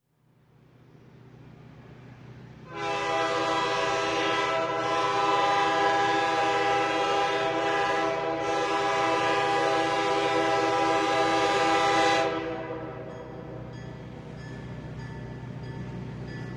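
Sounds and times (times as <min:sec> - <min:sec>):
short train horn blow: 0:02.7 - 0:13.6.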